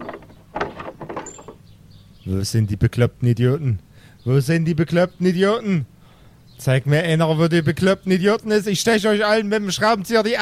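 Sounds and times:
house front door creaking open: 0.0s - 1.7s
speech: 2.3s - 5.9s, 6.6s - 10.3s.

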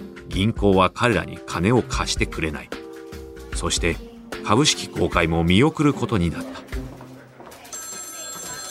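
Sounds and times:
speech: 0.4s - 2.8s, 3.6s - 6.8s
telephone ringing with an electronic trill: 7.7s - 8.6s.

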